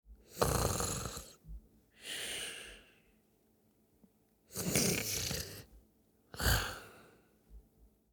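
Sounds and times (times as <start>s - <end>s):
young boy sleeping and snoring: 0.3s - 1.4s, 4.5s - 5.7s, 6.4s - 7.0s.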